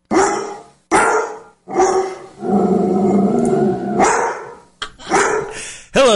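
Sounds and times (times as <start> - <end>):
dog barking: 0.1 - 2.3, 4.0 - 5.6
dog growling: 1.7 - 5.5.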